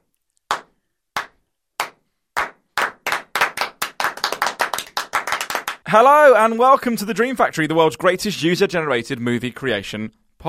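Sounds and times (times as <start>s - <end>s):
single person clapping slowly then accelerating: 0.5s - 5.8s
speech: 5.9s - 10.4s.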